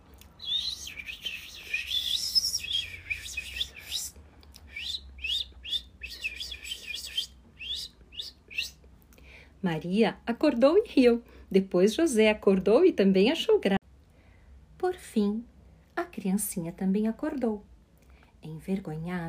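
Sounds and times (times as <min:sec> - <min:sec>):
small birds chirping and singing: 0:00.3 - 0:08.8
speech: 0:09.6 - 0:13.8, 0:14.9 - 0:15.5, 0:16.2 - 0:17.7, 0:18.4 - 0:19.2.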